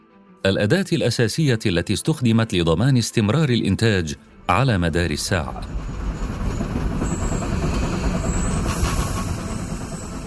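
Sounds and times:
speech: 0.4s - 6.0s
steam train running along the rails: 4.7s - 10.2s.

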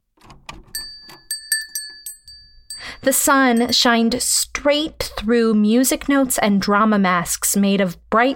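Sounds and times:
small hanging bells jingling as a door brushes past: 0.7s - 4.0s
speech: 3.0s - 8.3s.

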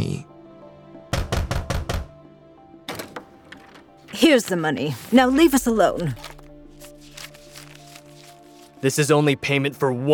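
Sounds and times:
landlords knocking on a tenants' door: 1.1s - 2.1s
speech: 4.2s - 6.4s, 8.8s - 10.1s.

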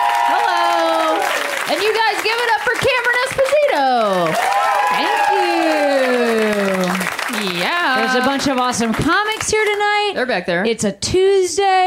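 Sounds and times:
voices whooping and cheering: 0.0s - 1.7s, 4.0s - 8.2s
crowd applauding: 0.0s - 9.9s
speech: 0.3s - 0.6s, 1.7s - 3.1s, 8.1s - 11.8s.

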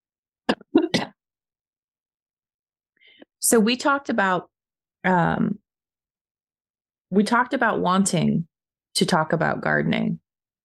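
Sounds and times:
person coughing: 0.5s - 1.2s
speech: 3.4s - 5.6s, 7.1s - 10.2s.

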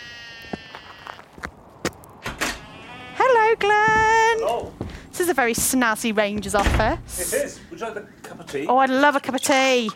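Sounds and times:
sheep bleating outdoors: 0.0s - 1.2s, 2.6s - 3.5s
speech: 4.6s - 9.9s.

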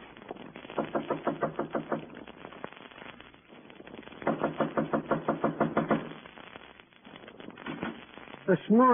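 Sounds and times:
knocking on a door: 0.8s - 2.1s, 4.3s - 6.1s
speech: 8.7s - 8.9s.

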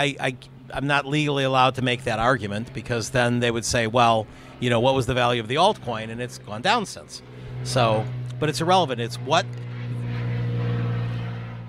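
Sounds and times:
speech: 0.0s - 9.7s
airplane flying overhead: 0.0s - 11.6s.

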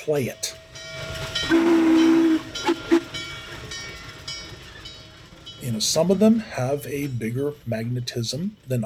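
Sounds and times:
speech: 0.0s - 0.6s, 5.6s - 8.8s
steam locomotive rumbling along: 0.0s - 8.8s
steam locomotive whistle blasts: 1.3s - 3.2s.

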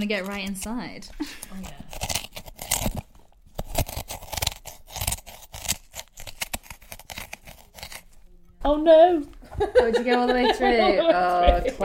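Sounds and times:
speech: 0.0s - 1.8s, 8.7s - 11.8s
metal spoons chiselling out the insides of turnips: 0.0s - 8.3s
laughter: 9.4s - 11.8s.

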